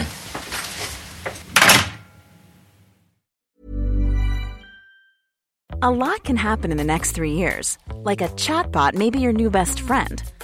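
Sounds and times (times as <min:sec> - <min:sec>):
rustling movement: 0:00.0 - 0:01.6
door latch clicking: 0:01.6 - 0:02.0
speech: 0:05.8 - 0:10.4.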